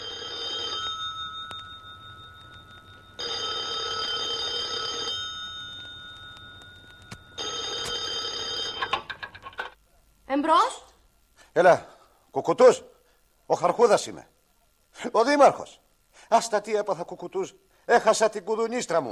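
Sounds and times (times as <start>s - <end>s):
telephone ringing: 0.0s - 9.8s
low steady hum: 0.0s - 13.5s
speech: 10.3s - 10.8s, 11.6s - 12.9s, 13.5s - 14.3s, 15.0s - 19.1s.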